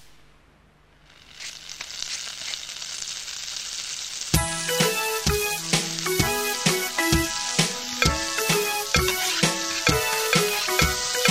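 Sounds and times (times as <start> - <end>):
sausages sizzling in a frying pan: 1.0 - 11.2
bouncy musical backing: 4.4 - 11.2.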